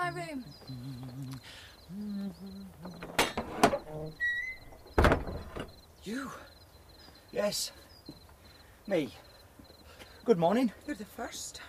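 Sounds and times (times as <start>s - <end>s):
door unlatched and creaking open: 2.8s - 5.8s
speech: 7.3s - 7.8s, 8.9s - 9.2s, 10.3s - 11.6s.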